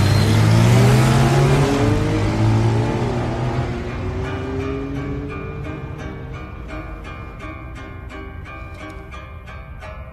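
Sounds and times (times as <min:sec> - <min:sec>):
motorcycle engines revving hard: 0:00.0 - 0:06.8.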